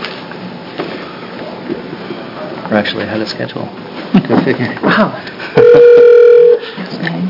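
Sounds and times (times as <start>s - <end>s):
speech: 2.7s - 6.0s
telephone dial tone: 5.6s - 6.6s.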